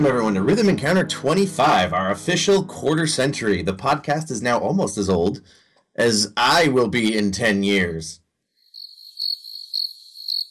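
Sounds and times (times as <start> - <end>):
speech: 0.0 - 8.2
cricket chirping: 8.6 - 10.4.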